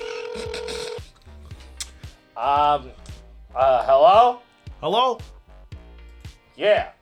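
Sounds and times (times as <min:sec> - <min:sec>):
short dialing beeps: 0:00.0 - 0:01.0
steady electronic tone from a flip phone: 0:00.0 - 0:01.0
speech: 0:00.4 - 0:00.7, 0:02.4 - 0:05.3, 0:06.6 - 0:07.0.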